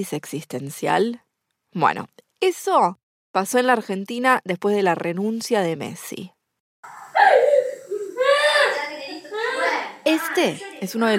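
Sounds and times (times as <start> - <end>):
speech: 0.0 - 7.0, 10.0 - 11.1
young child crying inconsolably with wails and sobbing breaths: 6.9 - 8.9.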